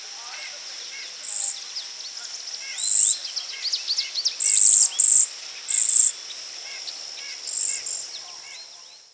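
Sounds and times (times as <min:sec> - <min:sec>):
chirps of other birds: 0:00.8 - 0:09.1.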